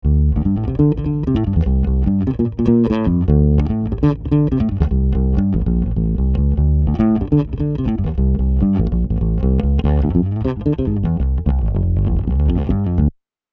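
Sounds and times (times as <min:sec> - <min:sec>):
dry bass through a compressor: 0:00.0 - 0:13.1.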